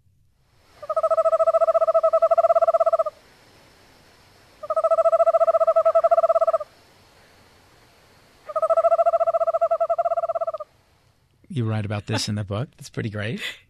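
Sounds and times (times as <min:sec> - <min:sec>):
Eastern Screech Owl giving ringing trills: 0:00.8 - 0:03.2, 0:04.6 - 0:06.7, 0:08.4 - 0:10.7
speech: 0:11.6 - 0:13.6.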